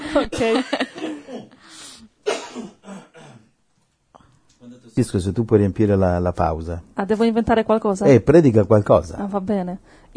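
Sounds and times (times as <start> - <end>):
speech: 0.2 - 0.9, 5.0 - 10.1
raspy coughs: 0.3 - 1.6, 2.2 - 3.6.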